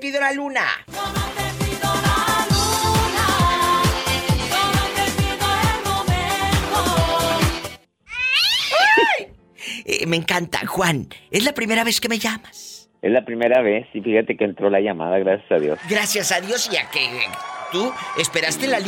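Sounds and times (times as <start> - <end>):
speech: 0.0 - 1.2, 9.9 - 18.8
upbeat music with a thumping beat: 0.9 - 7.8
female cat meowing: 8.1 - 9.2.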